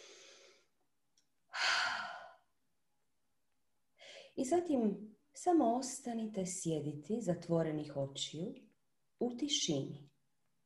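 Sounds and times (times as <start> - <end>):
long sigh-like breath out through the mouth: 1.5 - 2.5
speech: 4.4 - 10.1.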